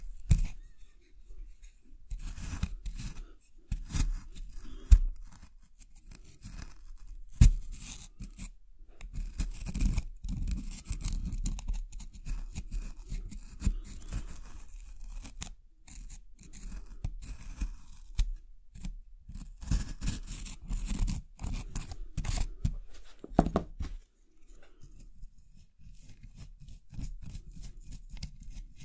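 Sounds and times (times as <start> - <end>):
small excavation tools scraping and scratching a soaked plaster block: 2.1 - 22.8, 24.8 - 28.8.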